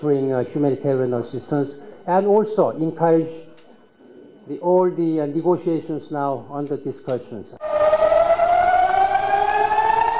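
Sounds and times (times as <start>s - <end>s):
speech: 0.0s - 3.5s, 4.5s - 7.7s
air raid siren wailing: 7.6s - 10.1s.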